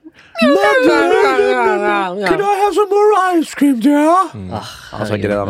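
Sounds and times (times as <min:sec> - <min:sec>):
sled dog howling at a parking lot: 0:00.4 - 0:02.0
speech: 0:02.1 - 0:05.4.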